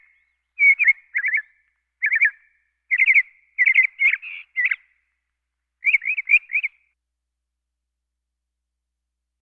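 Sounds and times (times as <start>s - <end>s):
Northern cardinal singing whistled notes: 0.0s - 5.0s, 5.8s - 6.9s.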